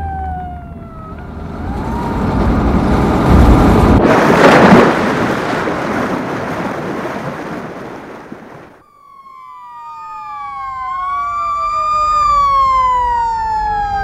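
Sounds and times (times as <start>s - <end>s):
brief wailing siren tone: 0.0s - 4.0s, 8.8s - 14.0s
stolen bus driving off a pier into the sea at Meritullintori square: 1.7s - 8.8s.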